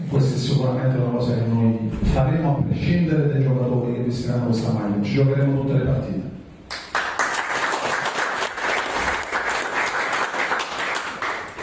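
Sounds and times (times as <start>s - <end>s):
speech: 0.1s - 6.3s
crowd applauding: 6.7s - 11.6s.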